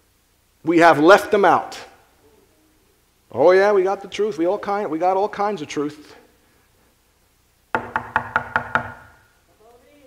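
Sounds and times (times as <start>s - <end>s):
speech: 0.6s - 1.9s, 3.3s - 6.2s
knocking on a door: 7.7s - 9.2s.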